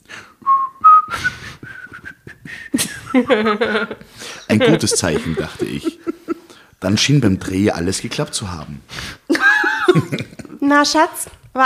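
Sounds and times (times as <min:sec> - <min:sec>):
person whistling a short lilting melody: 0:00.4 - 0:03.2
speech: 0:02.7 - 0:06.2, 0:06.8 - 0:09.2, 0:09.9 - 0:11.6
laughter: 0:02.8 - 0:07.1, 0:09.3 - 0:10.6
brief burst of voiced harmonic sound: 0:04.4 - 0:06.5.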